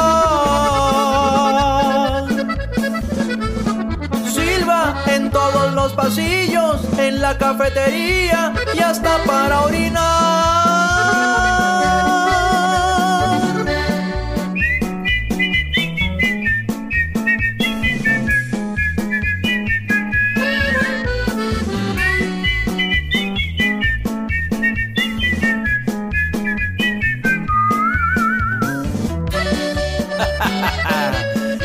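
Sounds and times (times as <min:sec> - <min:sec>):
steady thumping musical backing: 0:00.0 - 0:31.6
speech: 0:07.1 - 0:12.2
man whistling a lively wavering tune: 0:13.4 - 0:29.5
laughter: 0:30.0 - 0:31.6.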